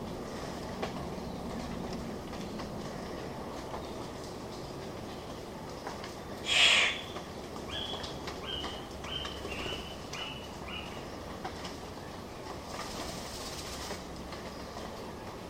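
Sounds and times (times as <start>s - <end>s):
steady noisy hiss: 0.0s - 15.4s
Victoria's riflebird Ptiloris victoriae rasping call: 6.4s - 7.2s
Victoria's riflebird descending series of short thin notes: 6.4s - 7.2s.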